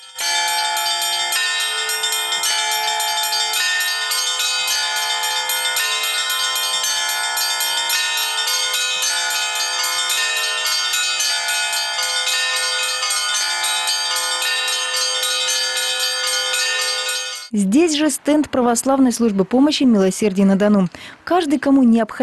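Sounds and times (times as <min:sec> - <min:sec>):
church bells ringing at a city celebration: 0:00.0 - 0:17.5
speech: 0:17.6 - 0:22.2.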